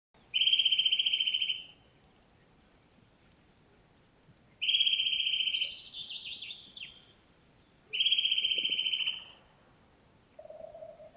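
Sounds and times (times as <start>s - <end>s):
Eurasian nuthatch (Sitta europaea) giving fast high trills: 0.3s - 1.8s, 4.6s - 7.0s, 7.9s - 9.4s, 10.4s - 11.1s.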